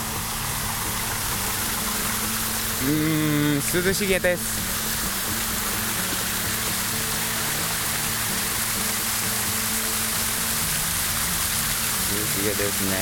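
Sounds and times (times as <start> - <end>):
water from a fountain cascading like a small waterfall: 0.0 - 13.0
speech: 2.8 - 4.7, 12.4 - 13.0.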